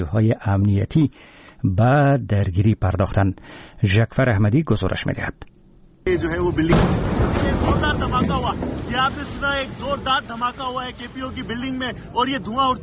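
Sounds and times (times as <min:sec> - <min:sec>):
speech: 0:00.0 - 0:12.8
TV news reporter talking urgently: 0:06.1 - 0:12.8
loud explosion during live TV news report: 0:06.2 - 0:12.1.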